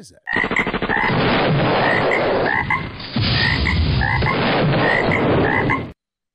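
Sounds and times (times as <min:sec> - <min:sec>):
speech: 0:00.0 - 0:02.3
dense chorus of frogs croaking: 0:01.8 - 0:05.9.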